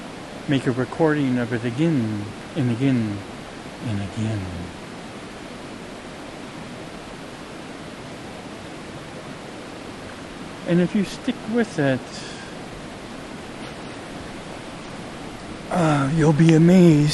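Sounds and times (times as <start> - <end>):
rushing flowing river water: 0.0 - 17.1
speech: 0.5 - 4.8, 10.6 - 12.3, 15.7 - 17.1.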